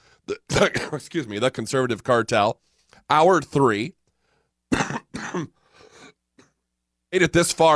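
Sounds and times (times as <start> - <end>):
person clearing throat: 0.3 - 1.0, 4.7 - 6.6
person coughing: 0.3 - 1.1, 4.7 - 6.6
speech: 0.3 - 4.0, 5.3 - 5.6, 7.1 - 7.7.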